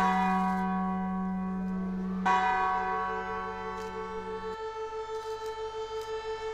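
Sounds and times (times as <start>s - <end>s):
long slowly pulsing bell hum: 0.0s - 5.0s
church bells ringing in the town centre of Wieluń Poland: 0.0s - 6.5s.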